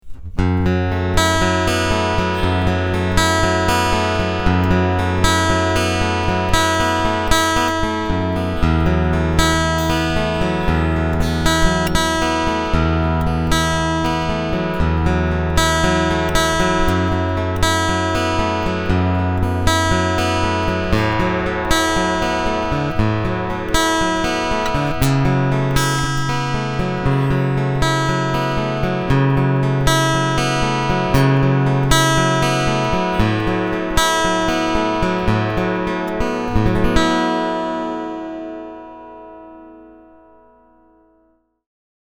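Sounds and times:
bass guitar picking with boosted bass and treble: 0:00.0 - 0:38.6.

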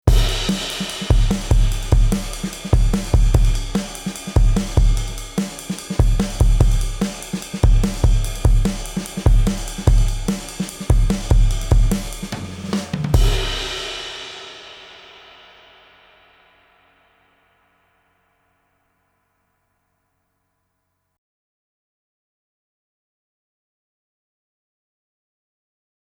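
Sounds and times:
drum bus with high-pass filter at 200: 0:00.0 - 0:16.7.

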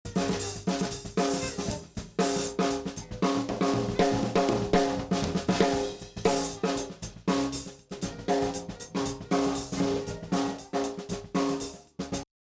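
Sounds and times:
heavily compressed gated snare drum: 0:00.0 - 0:12.3.

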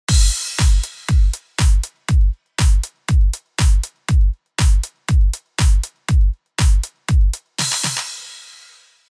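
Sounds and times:
drum beat without EQ: 0:00.0 - 0:08.9.

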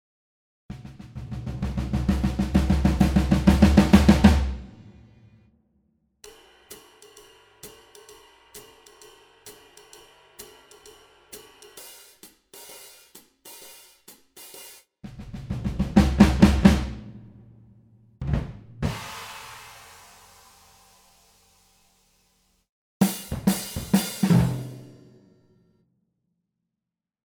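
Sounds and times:
swing drum grooves: 0:00.7 - 0:04.8, 0:06.2 - 0:17.2, 0:18.2 - 0:20.3, 0:23.0 - 0:25.0.

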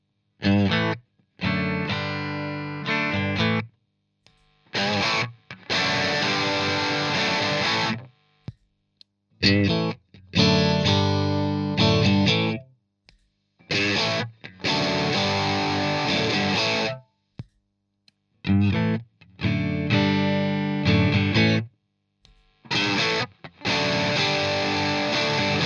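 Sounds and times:
guitar riff through a Screamer overdrive channel one: 0:00.4 - 0:03.7, 0:04.7 - 0:08.1, 0:09.4 - 0:12.6, 0:13.7 - 0:17.0, 0:18.4 - 0:21.7, 0:22.7 - 0:25.6.

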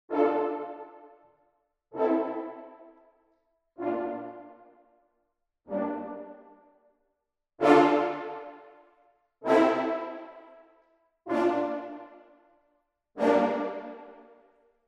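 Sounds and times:
staccato horns: 0:00.1 - 0:01.1, 0:02.0 - 0:02.9, 0:03.8 - 0:04.6, 0:07.6 - 0:08.7, 0:09.4 - 0:10.6, 0:11.3 - 0:12.2, 0:13.2 - 0:14.3.

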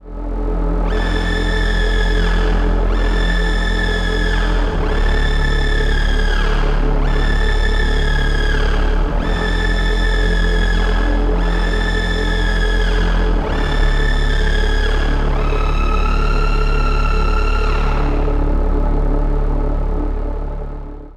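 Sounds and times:
Erica Synths Syntrx II synthesizer drone playing: 0:00.0 - 0:21.1.

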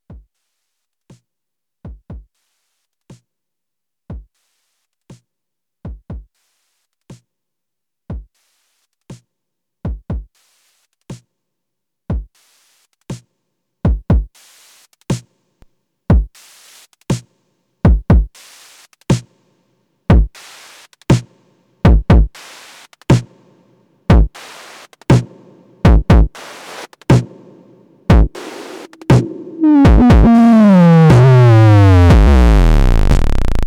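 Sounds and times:
distorted drums from a Bastl Bestie: 0:16.1 - 0:17.2, 0:17.9 - 0:19.3, 0:20.1 - 0:21.3, 0:21.9 - 0:23.3, 0:24.1 - 0:33.6.

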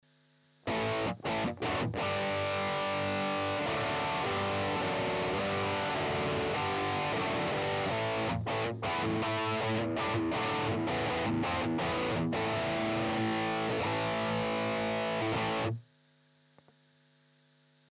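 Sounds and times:
Stratocaster rhythm guitar through EHX 5150 direct output: 0:00.7 - 0:15.8.

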